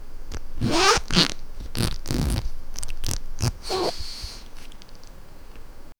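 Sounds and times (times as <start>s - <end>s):
low tone wet fart grumble: 0.6s - 4.1s.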